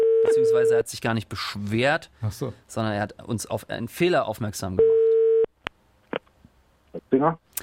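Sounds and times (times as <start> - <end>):
electronic telephone ringing tone while placing a call: 0.0 - 0.5, 4.8 - 5.5
speech: 0.3 - 4.9, 7.1 - 7.6.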